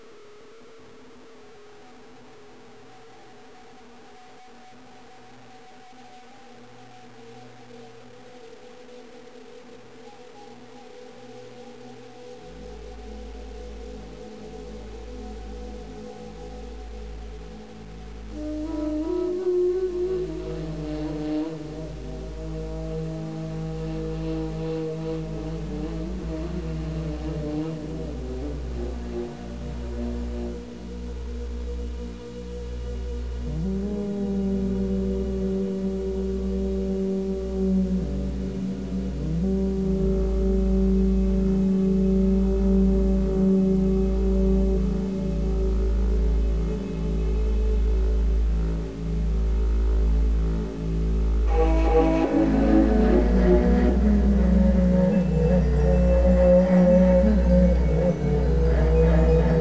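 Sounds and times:
ambient wind: 0:12.6 - 0:59.6.

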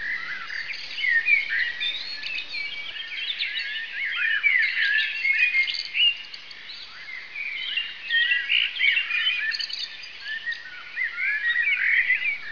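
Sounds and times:
many birds chirping in a dense chorus: 0:00.0 - 0:12.5.

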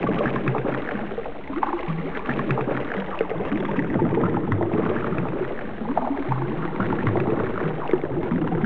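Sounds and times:
lava: 0:00.0 - 0:08.6.

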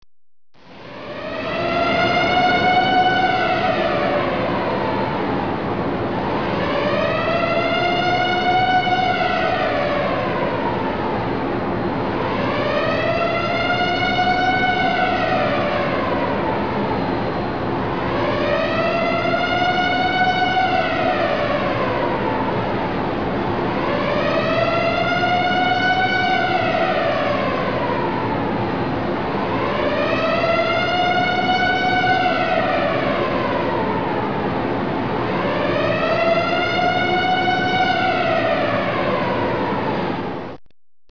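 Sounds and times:
air raid siren: 0:00.6 - 0:40.6.

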